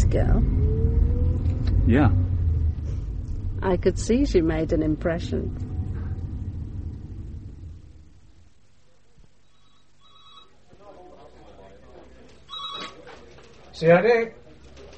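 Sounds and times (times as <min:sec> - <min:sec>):
low rumble: 0:00.0 - 0:10.0
speech: 0:00.1 - 0:00.7, 0:01.8 - 0:02.2, 0:03.6 - 0:05.7, 0:13.8 - 0:14.4
telephone bell ringing: 0:09.5 - 0:10.6, 0:12.5 - 0:13.0.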